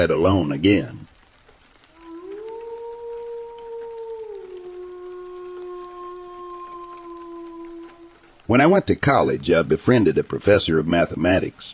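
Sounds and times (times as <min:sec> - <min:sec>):
speech: 0:00.0 - 0:01.0, 0:08.5 - 0:11.7
faint hissy background: 0:00.0 - 0:11.7
eerie howl: 0:01.8 - 0:08.9.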